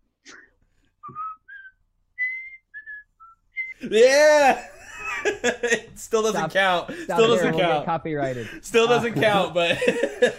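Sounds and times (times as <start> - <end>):
person whistling a TV theme tune: 1.0 - 3.8
laughter: 3.8 - 7.6, 8.7 - 10.3
speech: 3.8 - 10.3.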